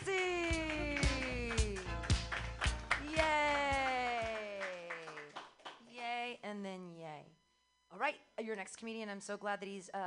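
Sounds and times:
audience clapping in time for a comedian: 0:00.0 - 0:05.9
speech: 0:08.1 - 0:10.0.

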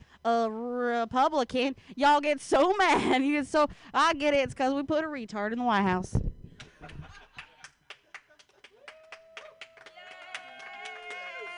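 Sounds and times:
speech: 0:00.2 - 0:07.2
small audience clapping rhythmically: 0:06.6 - 0:11.5.

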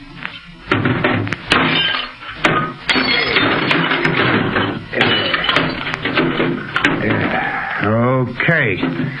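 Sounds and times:
crunching and clattering debris: 0:00.7 - 0:07.4
short wave radio set being smashed: 0:00.7 - 0:07.4
speech: 0:08.4 - 0:09.1.

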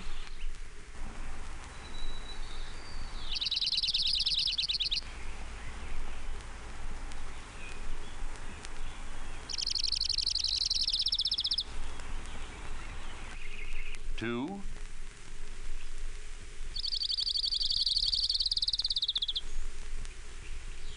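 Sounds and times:
steady low rumble: 0:00.0 - 0:20.9
faint chirps: 0:01.6 - 0:14.7, 0:16.7 - 0:20.9
Orange-crowned Warbler singing a high rapid trill: 0:01.7 - 0:06.3, 0:07.3 - 0:14.1, 0:16.7 - 0:19.6.

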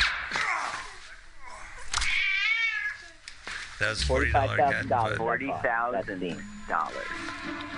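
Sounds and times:
cat in a film scene meowing and yowling: 0:02.0 - 0:03.1
speech: 0:03.8 - 0:07.7.

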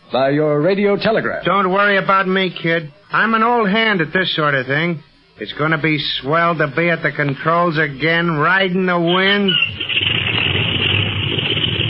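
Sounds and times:
speech: 0:00.1 - 0:10.0
aircraft motor warming up before a flight: 0:09.5 - 0:11.8.

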